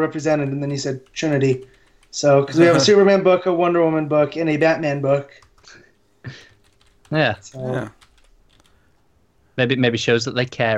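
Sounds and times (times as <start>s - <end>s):
speech: 0.0s - 6.5s, 7.1s - 8.0s, 9.6s - 10.7s
typing on a computer keyboard: 0.3s - 2.4s, 5.3s - 8.8s
voices: 7.5s - 7.9s.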